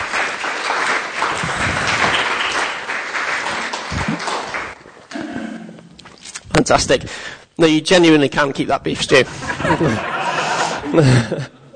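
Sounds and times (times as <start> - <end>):
crowd clapping: 0.0 - 5.1
speech: 6.6 - 10.2, 10.9 - 11.6
laughter: 9.2 - 11.7.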